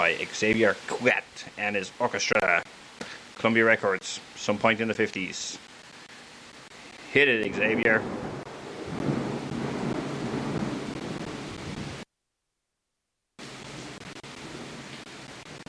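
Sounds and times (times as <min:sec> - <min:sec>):
speech: 0:00.0 - 0:02.8, 0:03.4 - 0:05.7, 0:07.1 - 0:08.3
crackling storm noise: 0:00.0 - 0:12.1, 0:13.4 - 0:15.6
thunder rumbling: 0:06.9 - 0:12.0, 0:13.4 - 0:15.6.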